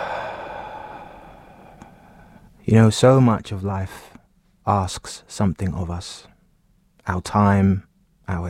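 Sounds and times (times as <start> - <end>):
long breath exhaled through the mouth: 0.0 - 2.5
speech: 2.7 - 4.1, 4.7 - 6.3, 7.1 - 8.4.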